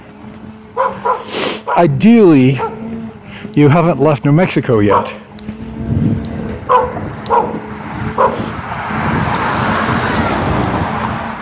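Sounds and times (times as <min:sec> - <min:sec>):
steady rumble of passing traffic: 0:00.0 - 0:11.4
small terrier with no collar or leash barking: 0:00.8 - 0:01.8, 0:02.5 - 0:02.9, 0:04.9 - 0:05.2, 0:06.7 - 0:07.6, 0:08.2 - 0:08.4
speech: 0:00.8 - 0:02.7, 0:03.6 - 0:05.2.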